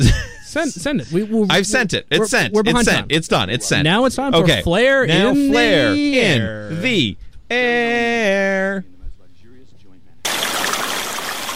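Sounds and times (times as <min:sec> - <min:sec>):
speech: 0:00.0 - 0:08.9
loud steady broadband rush of running water: 0:10.3 - 0:11.5.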